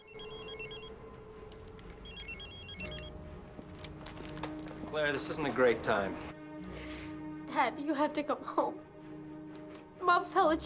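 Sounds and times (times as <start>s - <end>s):
mobile phone trilling electronic ringtone: 0.0s - 1.0s, 2.0s - 3.1s
speech: 5.0s - 6.3s, 7.6s - 8.9s, 10.0s - 10.6s.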